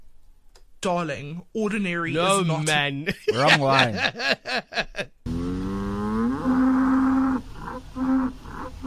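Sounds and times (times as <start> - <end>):
speech: 0.8 - 5.1
laughter: 3.1 - 5.1
Ankole cattle mooing: 5.3 - 8.8.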